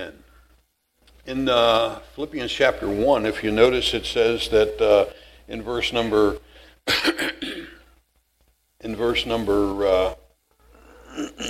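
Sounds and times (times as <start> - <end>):
speech: 1.3 - 7.8, 8.8 - 10.2, 11.1 - 11.4
preacher clearing his throat during a church sermon: 6.9 - 7.9, 11.0 - 11.4.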